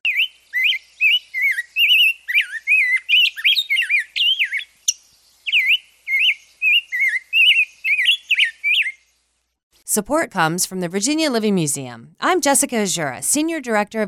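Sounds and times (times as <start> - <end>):
rose-breasted grosbeak singing: 0.1 - 9.2
speech: 10.0 - 14.0.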